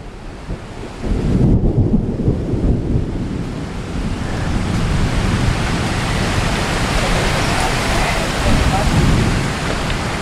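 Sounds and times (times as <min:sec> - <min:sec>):
distant thunder rumbling: 0:00.0 - 0:10.2
rain: 0:00.0 - 0:10.2.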